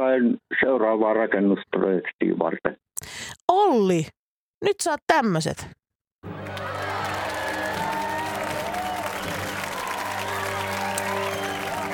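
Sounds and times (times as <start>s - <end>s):
speech: 0.0s - 6.5s
crowd cheering and whooping: 6.3s - 11.9s
large crowd applauding: 6.3s - 11.9s.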